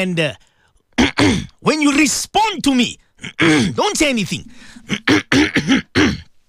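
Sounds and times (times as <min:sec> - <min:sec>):
speech: 0:00.0 - 0:00.5, 0:01.1 - 0:05.9
rough coughing: 0:00.9 - 0:01.6, 0:03.2 - 0:03.9, 0:04.6 - 0:06.4
throat clearing: 0:01.0 - 0:01.6, 0:03.2 - 0:03.8, 0:04.9 - 0:06.3.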